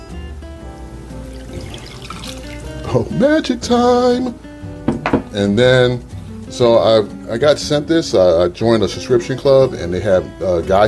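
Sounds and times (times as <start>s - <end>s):
four ounces of liquor pouring into a glass: 1.1s - 2.9s
speech: 2.9s - 4.4s, 5.3s - 10.8s.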